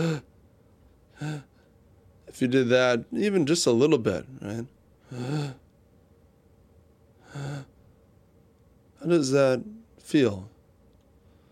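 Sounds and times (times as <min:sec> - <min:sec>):
person making sharp voiced gasping inhales through the mouth: 0:00.0 - 0:00.2, 0:01.2 - 0:01.6, 0:05.1 - 0:05.6, 0:07.2 - 0:07.7
speech: 0:00.0 - 0:00.3, 0:01.2 - 0:01.5, 0:02.3 - 0:05.6, 0:07.3 - 0:07.7, 0:09.0 - 0:10.5.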